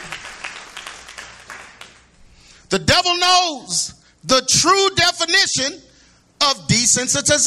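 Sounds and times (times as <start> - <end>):
crowd applauding: 0.0 - 2.2
speech: 2.7 - 7.4.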